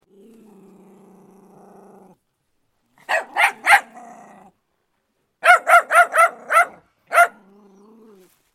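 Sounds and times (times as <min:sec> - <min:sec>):
dog growling: 0:00.0 - 0:02.2, 0:03.4 - 0:04.6, 0:07.3 - 0:08.3
dog barking: 0:03.0 - 0:04.0, 0:05.4 - 0:07.4.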